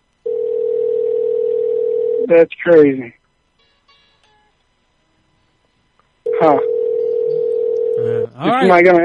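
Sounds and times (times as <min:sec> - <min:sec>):
telephone dial tone from a phone call: 0:00.3 - 0:02.2, 0:06.3 - 0:08.0
speech: 0:02.3 - 0:03.2, 0:06.4 - 0:06.7, 0:08.4 - 0:09.0.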